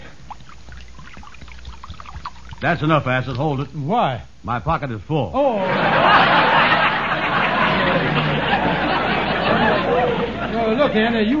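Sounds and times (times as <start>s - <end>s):
liquid pouring from a jug: 0.0s - 3.7s
speech: 2.6s - 6.5s, 10.7s - 11.3s
laughter: 5.6s - 11.3s.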